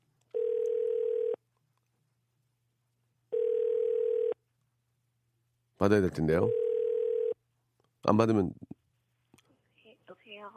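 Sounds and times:
telephone ringback tone while calling: 0.4s - 1.4s, 3.3s - 4.4s, 6.5s - 7.4s
speech: 5.8s - 6.6s, 8.0s - 8.7s.

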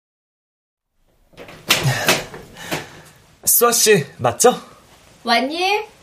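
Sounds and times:
front door creaking swing: 1.1s - 3.1s
knocking thuds: 1.1s - 3.2s
speech: 3.6s - 5.9s.

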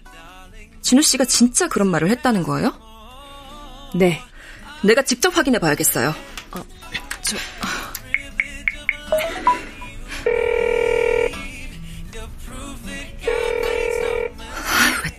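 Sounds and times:
speech: 0.8s - 2.9s, 3.9s - 7.8s
dialing beeps: 8.2s - 11.3s
phone ringing on the line: 8.7s - 11.4s, 13.3s - 14.4s.

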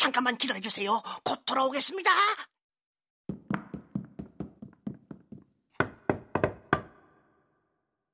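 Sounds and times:
speech: 0.0s - 2.5s
knocking on the door of a large dark mansion: 3.3s - 7.1s.

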